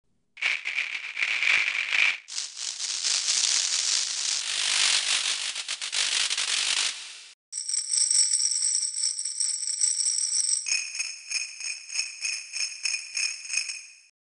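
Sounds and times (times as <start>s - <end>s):
shakers: 0.4s - 13.8s.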